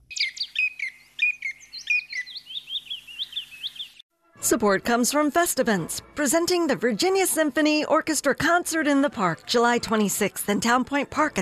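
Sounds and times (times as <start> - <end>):
chipping sparrow singing: 0.0 - 4.0
speech: 4.4 - 11.4.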